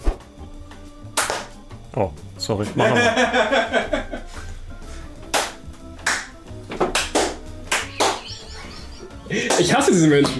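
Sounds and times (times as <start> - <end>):
single hand clap for audio sync with room echo: 1.1 - 1.6, 5.2 - 8.3, 9.4 - 10.3
speech: 2.0 - 4.0, 9.3 - 10.3
laughter: 2.7 - 4.5, 7.8 - 10.2.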